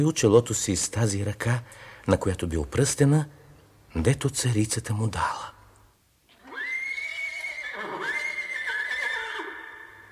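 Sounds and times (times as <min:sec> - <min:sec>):
speech: 0:00.0 - 0:05.6
horse neighing in a wilderness: 0:06.3 - 0:10.0.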